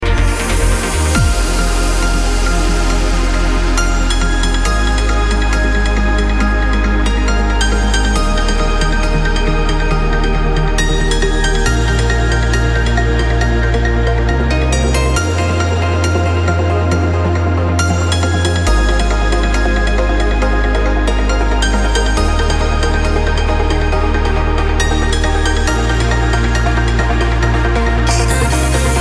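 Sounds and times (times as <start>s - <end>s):
piano trance music: 0.0s - 29.0s.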